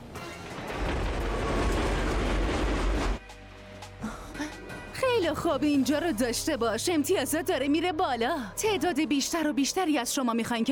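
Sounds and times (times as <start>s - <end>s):
subway train rumbling along the tracks: 0.0s - 3.2s
speech: 5.3s - 10.6s.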